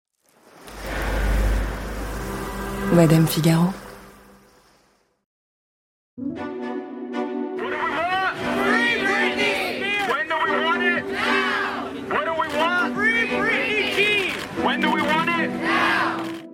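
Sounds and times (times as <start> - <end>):
steady low drone: 0.6 - 4.6
speech: 2.9 - 3.8
crowd of protesters shouting and chanting in a city street: 7.6 - 16.4.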